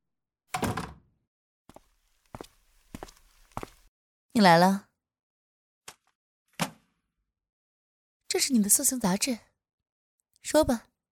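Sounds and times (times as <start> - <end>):
door being closed with a heavy thud: 0.6 - 1.0
speech: 4.4 - 4.9, 8.4 - 9.5, 10.4 - 10.9.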